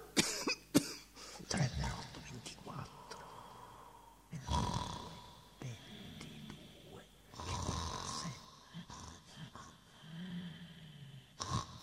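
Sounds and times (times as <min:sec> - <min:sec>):
person coughing: 0:00.0 - 0:01.1
person speaking quietly: 0:01.4 - 0:03.5, 0:04.3 - 0:09.9
person snoring: 0:02.8 - 0:11.8.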